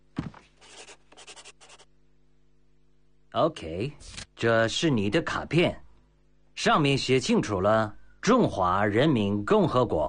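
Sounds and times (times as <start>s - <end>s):
pen signing a document: 0.6s - 1.9s
speech: 3.4s - 5.8s, 6.6s - 10.0s.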